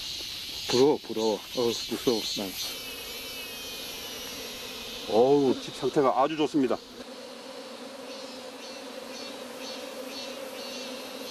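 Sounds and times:
native Korean honeybees buzzing at hive: 0:00.0 - 0:11.2
speech: 0:00.7 - 0:02.8, 0:05.1 - 0:07.1.

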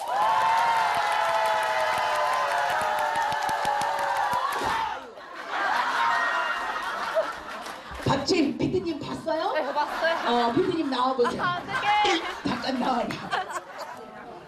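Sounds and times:
large audience clapping: 0:00.0 - 0:05.0, 0:06.6 - 0:08.1
cheering and laughing voices: 0:00.0 - 0:08.0, 0:09.6 - 0:14.4
speech: 0:08.1 - 0:13.3.

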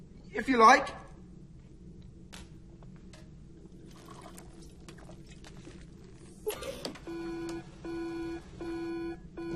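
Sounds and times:
speech: 0:00.3 - 0:01.0
testing machine beeping while testing a hot sample: 0:07.0 - 0:09.5.

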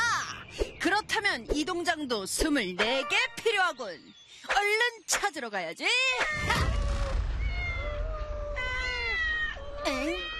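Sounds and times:
speech: 0:00.8 - 0:06.7, 0:09.8 - 0:10.3
several cats meowing in drawn-out cries: 0:06.2 - 0:10.3.

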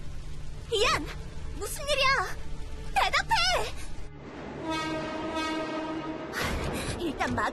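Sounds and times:
train rumbling in along the track: 0:00.6 - 0:07.5
train horn blaring: 0:04.2 - 0:06.7.

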